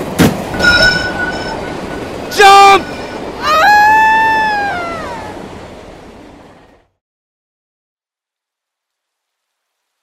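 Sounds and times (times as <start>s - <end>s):
steel train wheels screeching against the rails: 0.0s - 6.8s
rumble of moving train cars: 0.0s - 7.0s.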